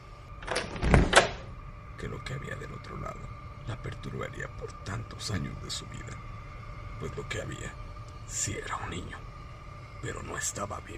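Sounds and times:
door being opened: 0.4s - 1.5s
speech: 2.0s - 6.3s, 7.0s - 9.3s, 10.0s - 10.9s.

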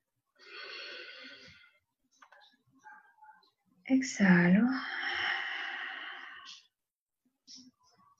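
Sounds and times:
slow deep inhalation during a guided breathing exercise: 0.4s - 1.8s, 4.9s - 6.6s
speech: 3.9s - 5.0s.

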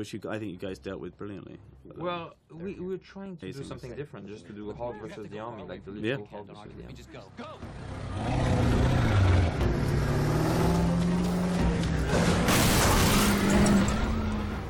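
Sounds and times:
speech: 0.0s - 8.6s
Humvee engines revving during movie filming: 7.6s - 14.6s
heavy crash of metal as Humvees are wrecked: 12.2s - 14.3s.

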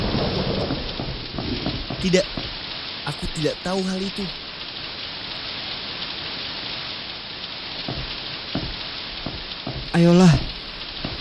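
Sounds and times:
low rumble of thunder: 0.0s - 2.8s
heavy rain pouring in a thunderstorm: 0.0s - 11.1s
speech: 2.0s - 2.4s, 3.1s - 4.4s, 10.0s - 10.5s.

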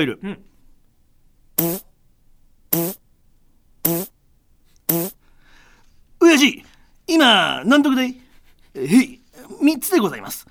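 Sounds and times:
speech: 0.0s - 0.5s, 1.6s - 1.9s, 7.2s - 8.2s, 8.8s - 10.4s
short loud buzzy fart noises: 1.6s - 1.9s, 2.7s - 3.0s, 3.8s - 4.1s, 4.9s - 5.2s.

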